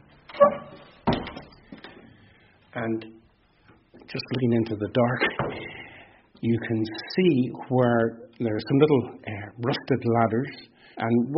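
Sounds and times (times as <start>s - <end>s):
heavy door being opened: 0.2s - 1.9s
speech: 2.8s - 3.2s, 4.1s - 5.8s, 6.4s - 11.3s.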